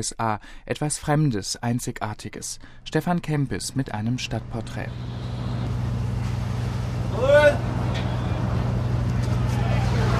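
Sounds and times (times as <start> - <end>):
speech: 0.0 - 5.5, 7.2 - 8.1
tour boat engine droning in the bay of Manhattan: 3.6 - 10.1.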